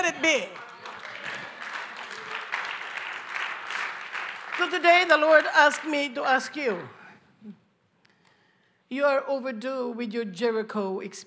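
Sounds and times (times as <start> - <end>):
speech: 0.0 - 0.6, 4.6 - 7.6, 8.9 - 11.2
audience clapping hands: 0.0 - 6.2.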